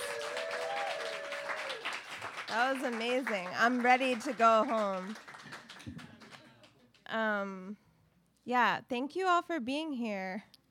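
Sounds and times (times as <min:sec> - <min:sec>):
audience applause at a reading event: 0:00.0 - 0:06.7
speech: 0:02.5 - 0:06.0, 0:07.1 - 0:07.8, 0:08.5 - 0:10.5.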